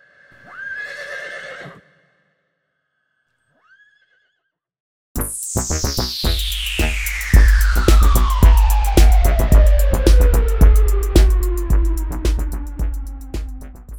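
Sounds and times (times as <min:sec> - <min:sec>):
horse neighing as a unicorn sound effect: 0:00.5 - 0:01.9
noisy burst with falling sweep and rapid rhythmic pulses: 0:05.2 - 0:13.9.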